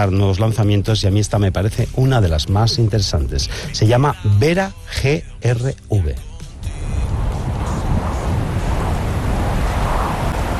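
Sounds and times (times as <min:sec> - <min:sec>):
speech: 0:00.0 - 0:06.3
ocean surf roaring: 0:06.8 - 0:10.5.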